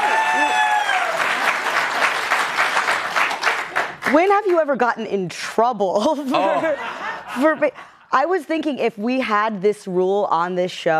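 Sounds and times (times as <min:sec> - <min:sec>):
crowd applauding: 0:00.0 - 0:04.2
speech: 0:04.1 - 0:10.9.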